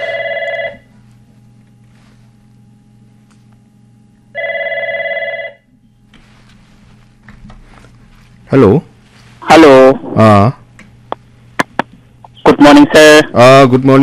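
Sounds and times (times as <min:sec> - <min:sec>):
telephone ringing for an incoming call: 0:00.0 - 0:00.9, 0:04.3 - 0:05.7
low steady hum: 0:00.0 - 0:14.0
speech: 0:08.5 - 0:08.9, 0:10.2 - 0:10.6, 0:12.9 - 0:14.0.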